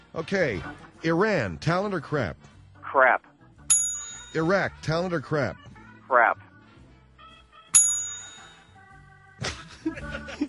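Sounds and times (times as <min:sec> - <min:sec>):
speech: 0:00.2 - 0:03.3, 0:04.3 - 0:06.4
voices: 0:00.2 - 0:03.3, 0:04.4 - 0:06.6
bright bell ding: 0:03.7 - 0:04.6, 0:07.8 - 0:08.8
laughter: 0:09.4 - 0:10.4.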